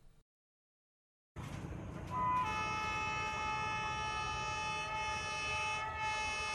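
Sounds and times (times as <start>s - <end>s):
sightseeing train rumbling on rails in Hanoi: 1.4s - 6.5s.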